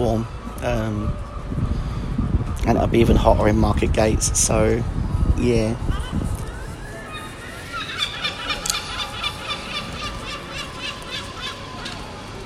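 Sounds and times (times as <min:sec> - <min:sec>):
speech: 0:00.0 - 0:01.7, 0:02.6 - 0:06.0
outdoor noise: 0:00.0 - 0:12.4
seagulls squawking: 0:05.9 - 0:12.4.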